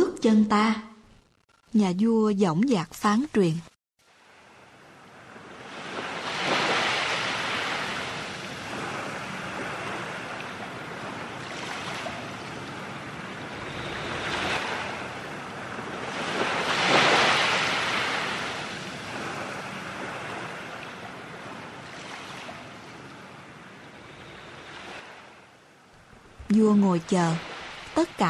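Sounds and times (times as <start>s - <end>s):
speech: 0.2s - 0.9s, 1.7s - 3.7s, 26.6s - 28.2s
ocean waves breaking on a sandy shore: 4.0s - 25.5s.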